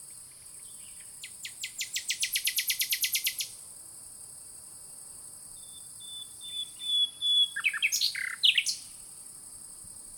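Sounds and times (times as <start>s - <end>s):
Common nightingale Luscinia megarhynchos singing: 0.0s - 3.6s, 5.6s - 9.0s.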